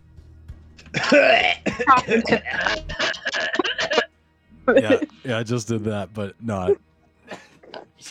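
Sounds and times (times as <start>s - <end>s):
speech: 0.9s - 3.6s, 4.7s - 7.4s
person clearing throat and coughing: 0.9s - 4.1s
laughter: 1.0s - 4.1s, 4.7s - 5.9s.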